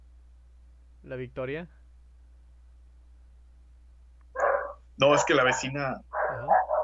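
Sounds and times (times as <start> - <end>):
faint low hum: 0.0 - 6.8
speech: 1.0 - 1.8, 5.0 - 6.6
dog barking: 4.4 - 6.8.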